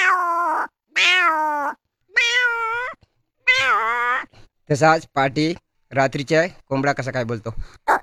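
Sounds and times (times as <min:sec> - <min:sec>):
hungry cat meowing: 0:00.0 - 0:04.3
speech: 0:04.7 - 0:07.9.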